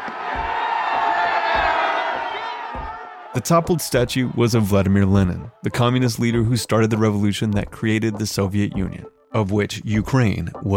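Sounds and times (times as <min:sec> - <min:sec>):
low thumps: 0:00.0 - 0:04.3
large crowd cheering and roaring: 0:00.0 - 0:05.6
speech: 0:03.4 - 0:10.7.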